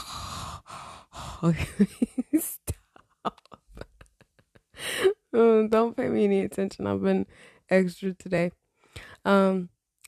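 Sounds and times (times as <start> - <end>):
heavy breathing into a microphone: 0.0 - 1.4, 7.3 - 7.7
speech: 1.4 - 2.7, 5.4 - 9.7.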